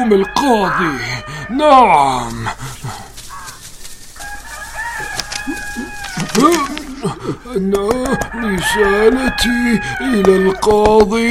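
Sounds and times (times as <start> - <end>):
speech: 0.0 - 3.0, 6.3 - 11.2
rooster crowing: 0.0 - 10.7
softer clucking: 0.2 - 11.1
rustling farmyard noise: 1.8 - 8.2
laughter: 5.1 - 9.3.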